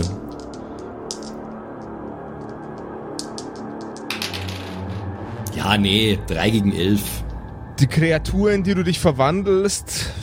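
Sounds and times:
dice including a twenty-sided die clattering across a hard tabletop: 0.0s - 1.5s, 2.4s - 5.0s
speech: 5.6s - 7.2s, 7.8s - 10.2s.

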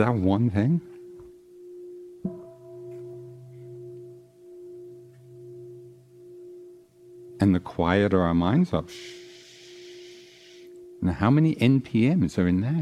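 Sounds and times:
speech: 0.0s - 0.9s, 7.4s - 9.2s, 11.0s - 12.8s
single bell ringing: 0.8s - 11.9s.

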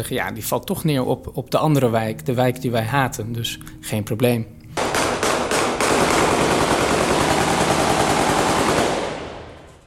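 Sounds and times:
speech: 0.0s - 4.6s
heavy automatic gunfire at a funeral: 4.8s - 9.7s.

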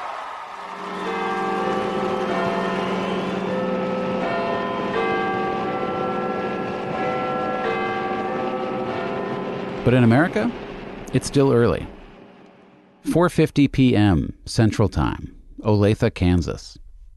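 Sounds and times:
big bell tolling: 0.8s - 13.3s
speech: 9.9s - 12.0s, 13.1s - 16.8s.

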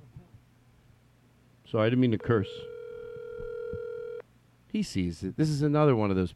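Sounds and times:
speech: 1.7s - 2.7s, 4.7s - 6.3s
outgoing phone call buzzy electronic ringing tone: 2.2s - 4.2s.

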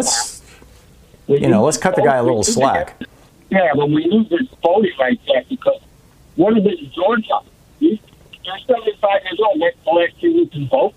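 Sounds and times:
speech: 0.0s - 0.3s, 1.3s - 10.9s
garbled breaking-up voice on a phone line: 0.0s - 0.4s, 1.3s - 5.8s, 6.4s - 10.9s.

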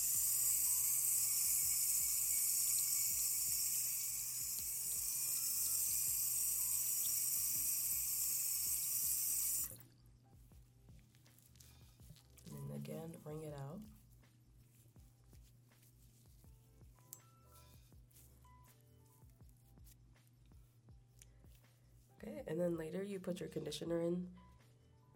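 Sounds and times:
running water rinsing soap out of washed hair: 0.0s - 9.8s
speech: 13.0s - 14.0s, 22.5s - 24.5s.

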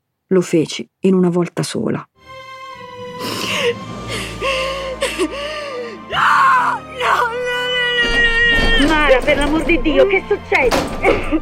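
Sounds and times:
speech: 0.3s - 2.1s, 9.2s - 11.3s
woman screaming and sobbing in an apartment building: 3.2s - 9.2s.

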